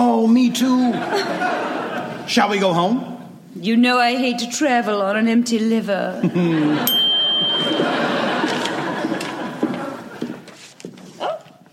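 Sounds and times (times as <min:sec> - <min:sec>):
speech: 0:00.3 - 0:08.1
laughter: 0:00.7 - 0:02.3, 0:06.2 - 0:06.9, 0:07.5 - 0:10.6
single bright bell ringing: 0:06.8 - 0:08.5.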